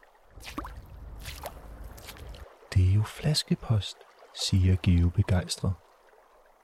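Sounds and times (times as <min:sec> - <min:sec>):
footsteps wading through shallow water at a beach: 0:00.3 - 0:02.7
low steady rumble: 0:00.4 - 0:02.8
speech: 0:02.8 - 0:05.8.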